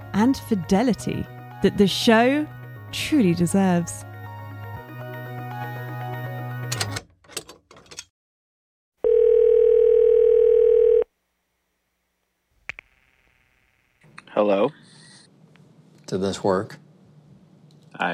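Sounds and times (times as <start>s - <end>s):
speech: 0.2s - 4.1s, 16.1s - 16.8s
telephone line tone: 9.0s - 11.1s.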